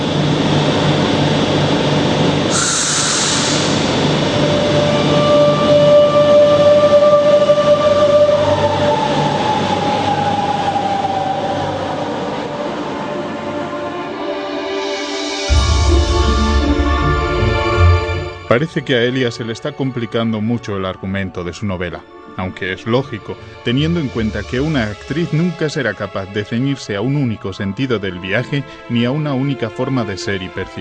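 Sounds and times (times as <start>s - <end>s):
metro train whining mechanical hum: 0.0s - 13.8s
metro train rumbling as it arrives: 0.0s - 30.7s
thin high metro train squeal: 2.5s - 18.9s, 22.9s - 26.2s
speech: 18.6s - 30.7s.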